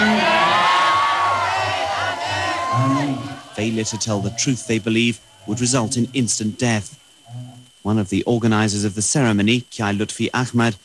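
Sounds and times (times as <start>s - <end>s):
whoops from a community crowd: 0.0s - 3.6s
community crowd cheering and shouting after an oath of innocence: 0.0s - 5.4s
speech: 3.6s - 10.8s.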